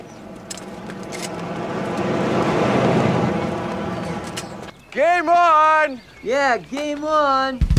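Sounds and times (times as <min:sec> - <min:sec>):
car driving past: 0:00.0 - 0:04.8
speech: 0:05.0 - 0:07.7.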